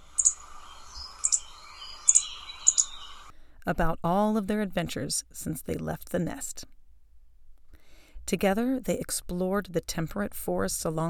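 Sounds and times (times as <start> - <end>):
young birds cheeping: 0.0 - 3.3
speech: 3.6 - 6.8, 8.3 - 11.0.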